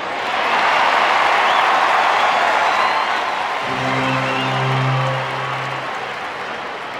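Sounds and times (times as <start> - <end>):
baseball crowd reaction hit: 0.2 - 6.8.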